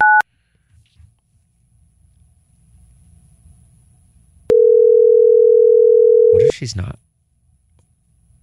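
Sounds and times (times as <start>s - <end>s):
phone call ringing tone: 4.5s - 6.5s
speech: 6.6s - 7.1s.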